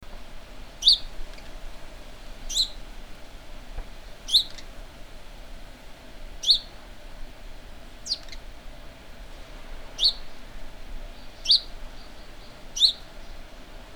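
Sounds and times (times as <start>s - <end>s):
faint background noise: 0.0s - 13.9s
house sparrow Passer domesticus sharp chirps: 0.8s - 1.1s, 2.5s - 2.8s, 4.3s - 4.7s, 6.4s - 6.7s, 8.0s - 8.4s, 10.0s - 10.3s, 11.2s - 13.4s.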